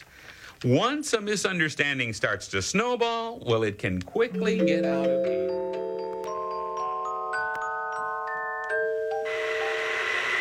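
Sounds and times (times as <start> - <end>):
speech: 0.6 - 5.9
bell chime ringing a slow melody: 4.3 - 9.8.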